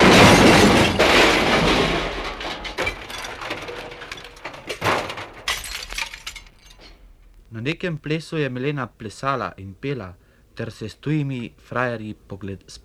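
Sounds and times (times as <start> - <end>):
glass bottle smashing: 0.0 - 7.4
scattered glass shards tinkling and debris settling: 1.9 - 7.4
speech: 7.6 - 12.8.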